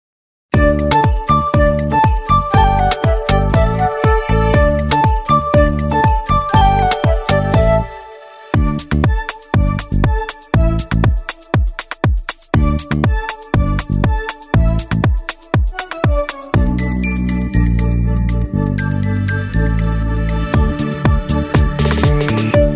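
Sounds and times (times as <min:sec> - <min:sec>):
instrumental karaoke version of a song: 0:00.6 - 0:22.7.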